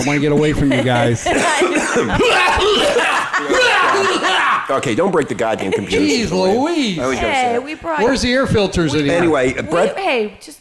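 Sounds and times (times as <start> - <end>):
speech: 0.0 - 3.5, 4.7 - 10.5
laughter: 0.0 - 7.5, 8.6 - 10.0
harsh hacking coughing fit: 0.4 - 4.6.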